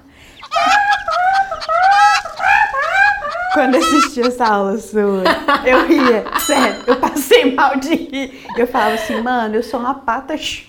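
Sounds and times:
hen clucking loudly: 0.0s - 4.7s
laughter: 0.5s - 9.4s
speech: 3.6s - 10.6s.

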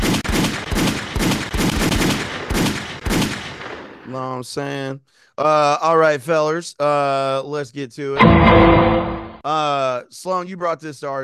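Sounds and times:
gunshot sound effects: 0.0s - 4.1s
speech: 4.2s - 11.2s.

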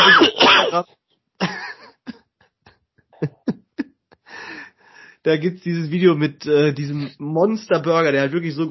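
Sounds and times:
harsh rasping cough and short sharp hacks: 0.0s - 0.8s, 1.4s - 1.8s, 3.2s - 3.6s
speech: 0.1s - 1.5s, 5.2s - 8.7s.

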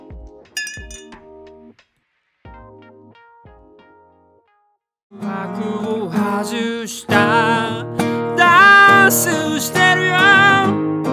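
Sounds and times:
glasses of milk clinking in a toast: 0.6s - 1.2s
sustained bell-like musical tones: 0.6s - 1.2s
speech: 5.2s - 11.1s.

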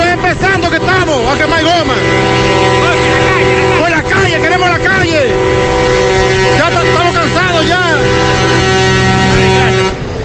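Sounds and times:
car horn blaring: 0.0s - 10.2s
street traffic rumbling: 0.0s - 10.2s.

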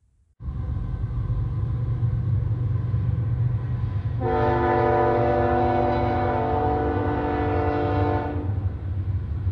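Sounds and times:
Union Pacific freight train rumbling past at night: 0.4s - 9.5s
freight train horn blast: 4.2s - 8.7s.

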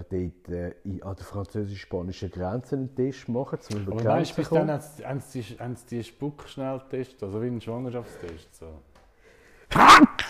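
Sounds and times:
speech: 0.0s - 8.9s, 9.7s - 10.2s
loud sneeze: 9.7s - 10.2s.

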